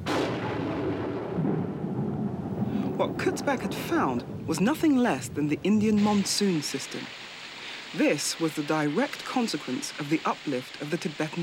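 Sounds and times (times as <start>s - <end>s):
thunder from violent thunderstorms: 0.0s - 6.2s
speech: 3.0s - 7.2s, 7.9s - 11.4s.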